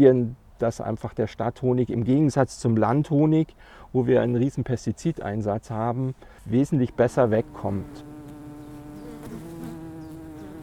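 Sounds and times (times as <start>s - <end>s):
speech: 0.0s - 8.1s
honey bees buzzing at urban beehives: 6.5s - 10.6s.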